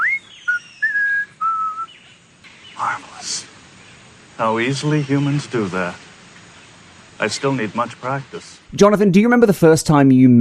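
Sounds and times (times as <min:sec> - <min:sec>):
person whistling a short phrase: 0:00.0 - 0:01.9
speech: 0:04.4 - 0:06.0, 0:07.2 - 0:10.4.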